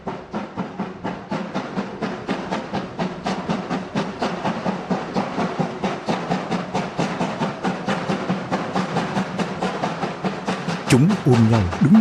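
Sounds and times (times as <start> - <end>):
steam train chuffing as it pulls out: 0.0 - 11.9
speech: 10.9 - 11.9.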